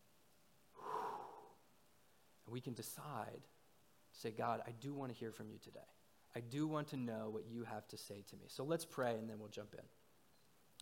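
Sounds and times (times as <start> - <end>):
church congregation taking a deep breath: 0.8 - 1.6
speech: 2.5 - 10.0.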